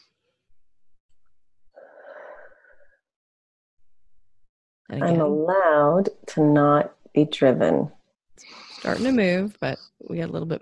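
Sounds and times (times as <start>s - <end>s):
deep breath drawn during a voice-coaching exercise: 1.7s - 3.0s
speech: 4.9s - 10.5s.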